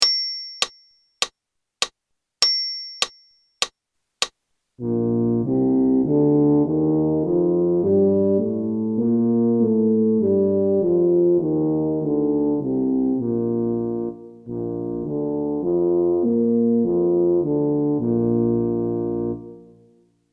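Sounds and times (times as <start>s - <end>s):
brass playing in G major: 4.8s - 19.9s.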